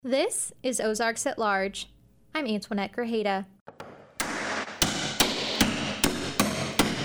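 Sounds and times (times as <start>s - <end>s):
speech: 0.0s - 3.6s
hammer striking wooden pegs at a history museum exhibit on architecture: 3.7s - 7.0s.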